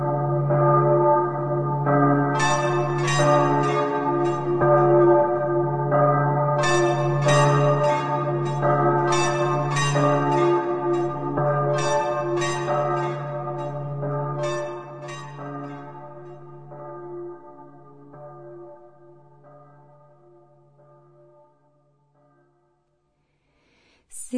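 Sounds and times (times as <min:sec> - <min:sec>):
church bell tolling: 0:00.0 - 0:22.8.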